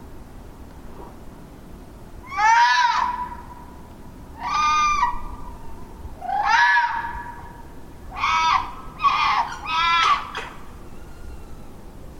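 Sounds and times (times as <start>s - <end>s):
urban wild red fox calling at midnight in Ireland: 2.2s - 3.6s, 4.4s - 11.8s.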